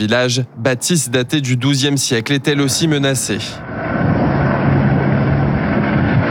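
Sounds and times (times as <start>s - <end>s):
speech: 0.0s - 3.9s
low-flying Dash propeller firefighting plane engine roaring overhead: 2.1s - 6.2s.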